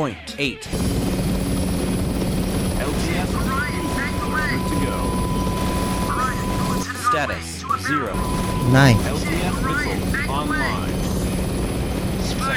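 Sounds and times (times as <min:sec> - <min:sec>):
speech: 0:00.0 - 0:01.0, 0:07.2 - 0:11.1, 0:12.3 - 0:12.5
helicopter rotor drone in a video game: 0:00.7 - 0:06.8, 0:08.2 - 0:12.5.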